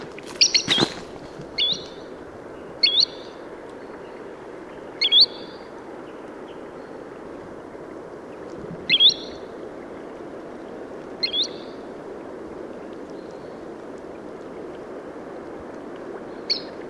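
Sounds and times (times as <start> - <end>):
green sandpiper calling: 0.2 - 4.1, 4.8 - 5.7, 8.9 - 9.5, 11.2 - 11.8, 16.5 - 16.7.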